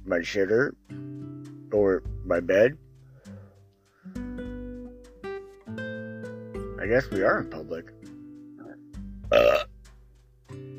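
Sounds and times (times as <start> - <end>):
speech: 0.1 - 1.0, 1.7 - 2.8, 6.8 - 8.0, 9.3 - 9.7
loud throaty burp: 8.6 - 9.7.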